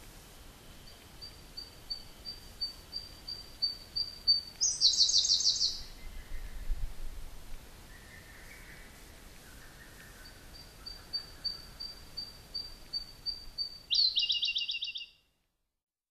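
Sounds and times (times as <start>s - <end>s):
Siberian blue robin song on Sado Island, Japan: 0.7s - 6.7s, 7.9s - 15.2s.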